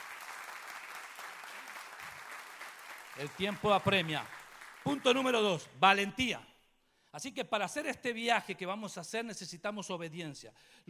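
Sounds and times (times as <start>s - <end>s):
audience applauding: 0.0s - 5.4s
speech: 3.2s - 6.5s, 7.1s - 10.8s.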